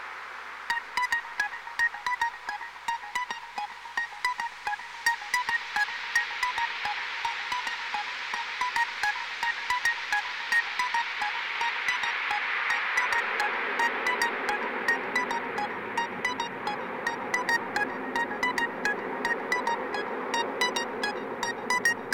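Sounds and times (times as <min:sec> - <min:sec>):
dreamy post trance dark synthwave ambient hardware synthesizer jam: 0:00.7 - 0:22.1.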